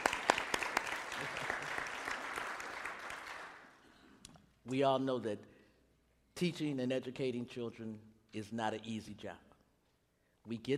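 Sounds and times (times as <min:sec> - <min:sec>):
audience of educators applauding: 0:00.0 - 0:03.7
speech: 0:04.7 - 0:05.5, 0:06.4 - 0:09.5, 0:10.4 - 0:10.7.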